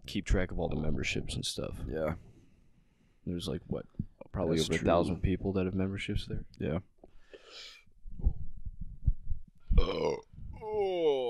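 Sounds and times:
speech: 0.1s - 2.3s, 3.2s - 6.9s, 9.8s - 11.1s
long loud burp: 9.8s - 10.3s.

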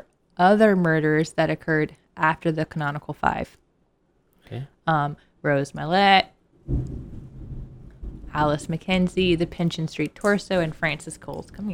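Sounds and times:
speech: 0.4s - 3.6s, 4.5s - 7.1s, 8.3s - 11.7s
deep rumble of thunder: 6.6s - 9.7s
steady rain falling outside: 6.7s - 9.6s.

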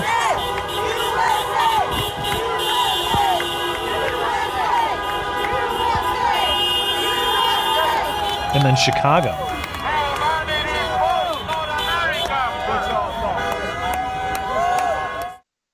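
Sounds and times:
large protest crowd chanting and cheering: 0.0s - 15.4s
speech: 8.6s - 9.6s.

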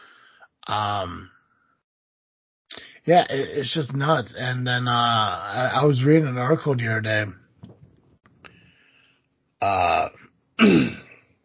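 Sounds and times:
speech: 0.7s - 1.4s, 3.0s - 7.4s, 9.6s - 11.0s
throat-clearing coughs: 10.6s - 11.3s.

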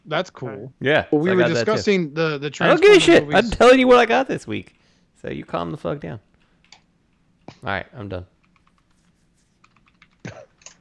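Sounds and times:
speech: 0.1s - 6.3s, 7.5s - 8.3s
furious typing on a computer keyboard: 8.4s - 10.7s.

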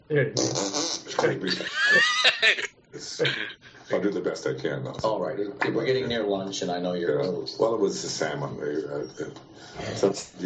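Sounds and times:
speech: 0.1s - 10.4s
fart machine sound effect: 0.3s - 1.3s
laughter: 1.5s - 3.9s.

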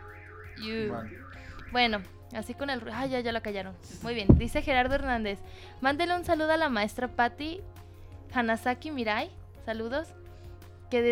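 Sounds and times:
car alarm wailing: 0.0s - 2.8s
speech: 0.6s - 10.2s, 10.9s - 11.1s.

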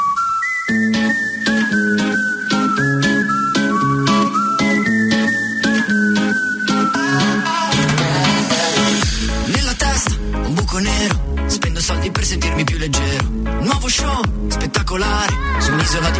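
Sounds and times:
bright whistled pop melody: 0.0s - 9.5s
upbeat pop song with drums and full band: 0.9s - 16.1s.

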